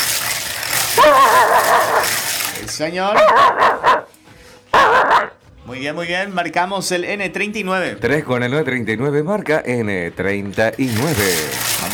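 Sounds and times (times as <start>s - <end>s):
small dog yapping and whining during a bingo game: 1.0s - 2.3s, 3.2s - 4.1s, 4.8s - 5.4s
speech: 2.8s - 4.0s, 5.7s - 11.9s.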